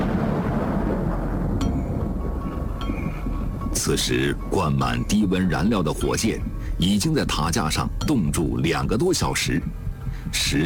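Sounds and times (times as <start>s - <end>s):
thunder rumbling from a thunderstorm: 0.0s - 6.8s
speech: 3.8s - 10.6s.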